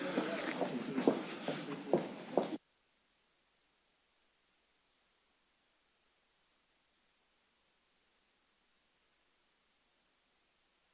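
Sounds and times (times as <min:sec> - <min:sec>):
soft footsteps on a hard floor walking to a lectern: 0:00.0 - 0:02.6.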